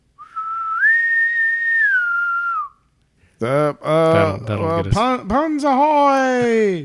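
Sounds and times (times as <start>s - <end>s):
person whistling an imitation of a bosun's pipe: 0.2s - 2.8s
speech: 3.4s - 6.8s.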